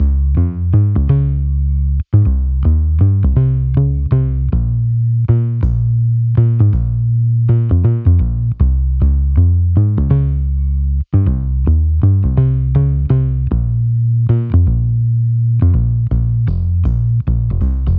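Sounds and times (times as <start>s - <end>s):
synth bass loop in C sharp: 0.0s - 17.9s.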